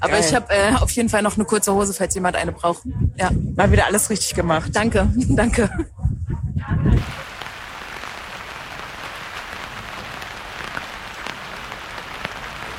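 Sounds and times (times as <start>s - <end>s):
speech: 0.0s - 6.0s
brief burst of a person's voice: 0.0s - 7.4s
steady rain falling outdoors in a dense hissing patter: 7.0s - 12.7s.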